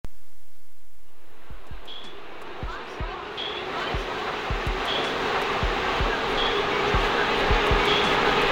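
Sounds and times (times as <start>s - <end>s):
ambient music loop: 1.1s - 8.4s.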